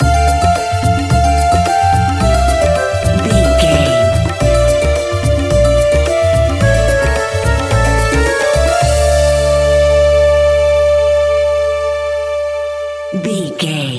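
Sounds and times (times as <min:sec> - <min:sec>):
groovy exotic Arabian world music bed stinger: 0:00.0 - 0:13.9.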